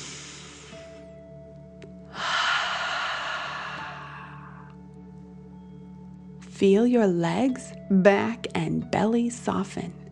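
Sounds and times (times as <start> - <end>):
deep breath in through the nose and out through the mouth: 0.0 - 1.2, 2.1 - 4.7
speech: 6.6 - 10.0.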